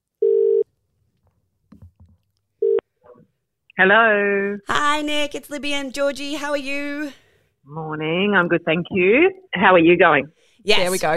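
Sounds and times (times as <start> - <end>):
telephone ringback tone: 0.2 - 0.6
speech: 3.8 - 11.1.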